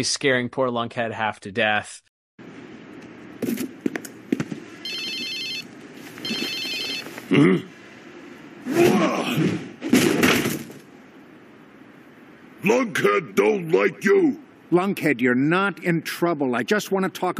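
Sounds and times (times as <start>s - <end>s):
speech: 0.0s - 2.1s, 3.4s - 3.7s, 7.3s - 7.7s, 8.7s - 10.0s, 12.6s - 17.3s
cell phone ringing in trilling electronic bursts: 4.8s - 7.2s.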